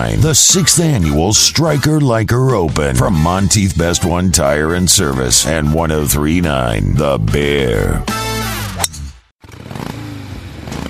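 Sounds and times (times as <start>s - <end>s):
speech: 0.0s - 8.2s
motorcycle engine revving with throttle blips: 9.4s - 10.8s.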